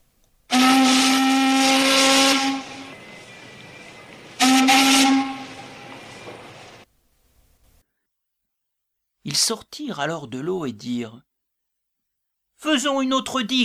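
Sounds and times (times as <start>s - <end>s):
warship steam whistle blasts: 0.5s - 6.8s
speech: 9.4s - 11.3s, 12.6s - 13.6s.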